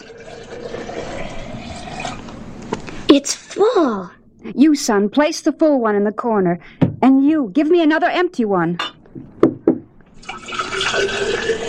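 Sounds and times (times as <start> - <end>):
oil poured from a container into an empty pot: 0.0 - 2.2, 10.2 - 11.6
speech: 3.1 - 9.3.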